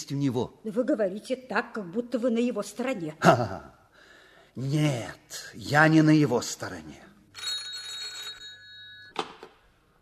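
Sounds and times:
speech: 0:00.1 - 0:03.8, 0:04.6 - 0:07.1
telephone ringing: 0:07.3 - 0:09.2.

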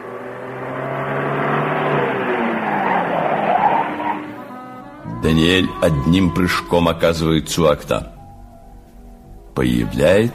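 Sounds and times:
tyre and road noise: 0:00.0 - 0:04.8
car engine humming as the vehicle slows and stops outside a house: 0:00.0 - 0:10.3
speech: 0:05.2 - 0:08.2, 0:09.6 - 0:10.3.

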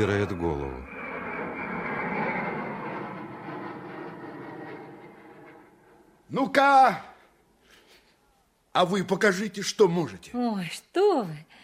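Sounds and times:
speech: 0:00.0 - 0:00.9, 0:06.3 - 0:07.1, 0:08.8 - 0:11.6
airplane roaring overhead: 0:00.0 - 0:06.4.

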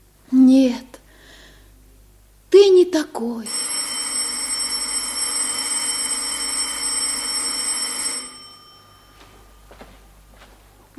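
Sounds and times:
speech: 0:02.9 - 0:03.6
electric bell ringing in a rattling trill: 0:03.5 - 0:10.2.

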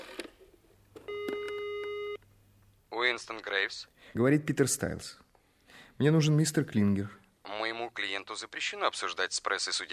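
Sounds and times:
steady electronic tone on the telephone line: 0:01.1 - 0:02.2
speech: 0:03.2 - 0:05.3, 0:06.0 - 0:07.2, 0:08.3 - 0:09.9.

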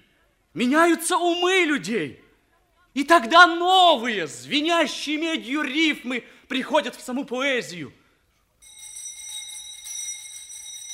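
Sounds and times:
speech: 0:00.6 - 0:02.2, 0:02.9 - 0:08.0
school bell ringing for break: 0:08.6 - 0:10.9.

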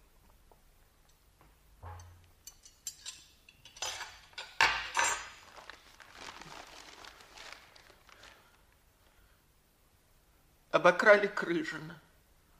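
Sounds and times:
dishes clattering: 0:01.8 - 0:05.5
rustling: 0:05.1 - 0:09.3
speech: 0:10.8 - 0:12.1.

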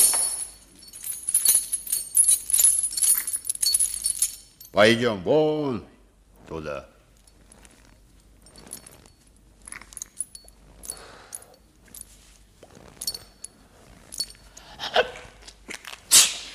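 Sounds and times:
metallic clinks: 0:00.0 - 0:04.8, 0:07.2 - 0:14.8
rustling: 0:00.0 - 0:04.8, 0:06.3 - 0:16.1
speech: 0:04.7 - 0:05.9, 0:06.5 - 0:06.9
person sneezing: 0:16.1 - 0:16.5.

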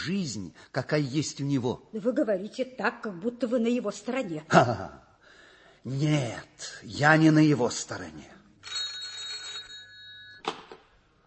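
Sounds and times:
speech: 0:00.0 - 0:05.0, 0:05.8 - 0:08.8
telephone bell ringing: 0:08.6 - 0:10.5.

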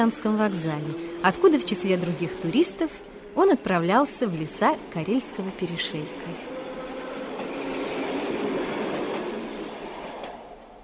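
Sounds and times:
speech: 0:00.0 - 0:06.5
commuter electric train rolling along: 0:00.0 - 0:10.8
train wheels clacking over rail joints: 0:04.5 - 0:10.8.

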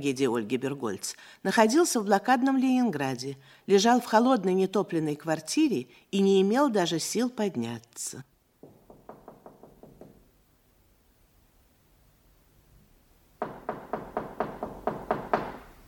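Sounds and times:
speech: 0:00.0 - 0:08.3
knocking on the door of a cold unheated apartment in besieged Leningrad: 0:08.6 - 0:10.3, 0:13.4 - 0:15.7.

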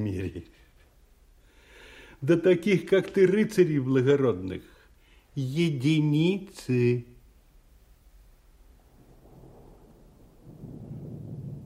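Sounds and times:
speech: 0:00.0 - 0:00.6, 0:02.2 - 0:04.7, 0:05.4 - 0:07.1
deep rolling thunder of an approaching thunderstorm: 0:08.7 - 0:11.6.

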